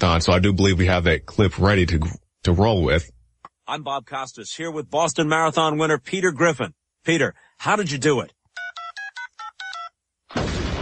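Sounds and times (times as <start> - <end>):
speech: 0.0 - 8.4
telephone keypad dialing tones: 8.6 - 10.0
loud blast of harsh crackling noise: 10.3 - 10.8.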